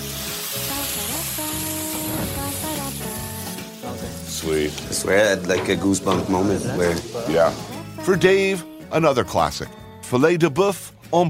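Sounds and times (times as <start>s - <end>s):
hot pan sizzling as it flares up: 0.0s - 8.0s
speech: 4.4s - 11.2s.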